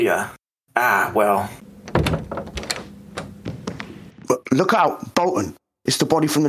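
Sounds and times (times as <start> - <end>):
speech: 0.0 - 1.7, 4.5 - 6.4
hollow thunks and clunks from the door latch and frame: 1.6 - 4.2
door with a glass pane being opened: 1.6 - 4.3.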